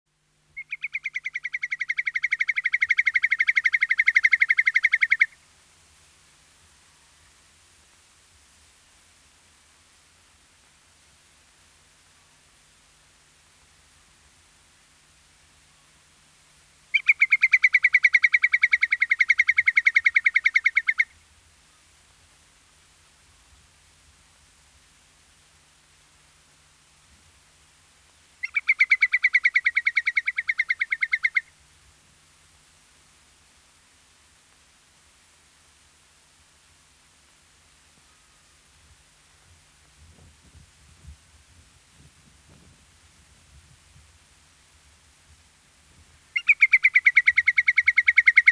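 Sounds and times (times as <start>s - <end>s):
whimbrel calling: 0.6s - 5.4s, 16.9s - 21.1s, 28.4s - 31.5s, 46.3s - 48.4s.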